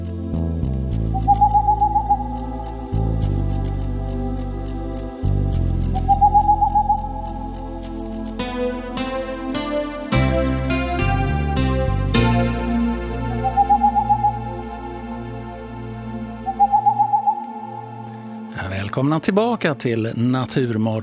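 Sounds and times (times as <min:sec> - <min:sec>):
musical backdrop with bass and piano-like tones: 0:00.0 - 0:21.0
boreal owl hooting: 0:01.0 - 0:03.0, 0:05.9 - 0:07.6, 0:13.3 - 0:15.0, 0:16.4 - 0:18.4
speech: 0:19.0 - 0:21.0.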